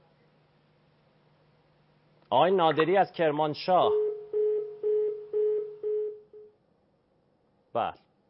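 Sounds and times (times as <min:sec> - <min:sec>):
speech: 0:02.3 - 0:04.0, 0:07.7 - 0:08.0
mid-pitched telephone ringback tone of an unanswered call: 0:04.0 - 0:06.5.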